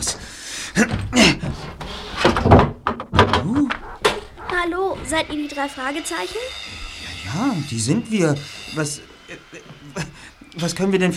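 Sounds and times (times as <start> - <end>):
knocks of movement: 0.2 - 5.7
speech: 0.8 - 1.3, 5.2 - 11.1
door creaking open: 0.9 - 5.2
voices murmuring and exclaiming: 3.2 - 11.1.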